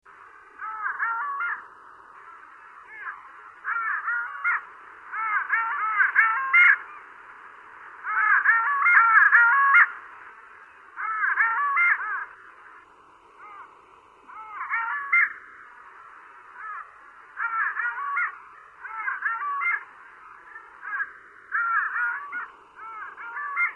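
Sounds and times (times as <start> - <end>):
long-tailed duck calling: 0.6 - 7.0, 8.0 - 10.0, 11.0 - 12.4, 14.3 - 15.8, 16.6 - 23.7.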